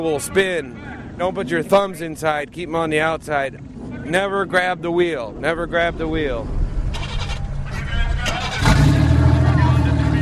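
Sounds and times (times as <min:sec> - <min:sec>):
speech: 0:00.0 - 0:06.6
car engines idling and revving: 0:05.6 - 0:10.2.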